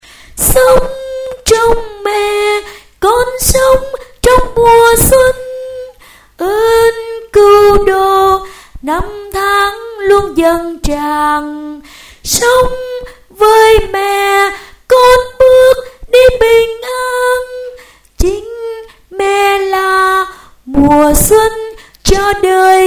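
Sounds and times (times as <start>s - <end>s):
soprano voice: 0.4s - 22.8s.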